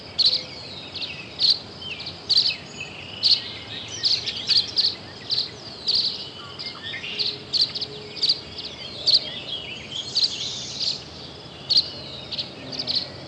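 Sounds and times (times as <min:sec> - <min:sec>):
tree swallow making brief high chirps: 0:00.0 - 0:13.2.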